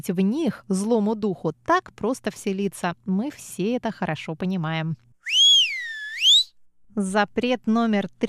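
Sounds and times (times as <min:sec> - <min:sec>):
speech: 0:00.0 - 0:05.4, 0:07.0 - 0:08.2
single human whistle sliding up and down: 0:05.2 - 0:06.6.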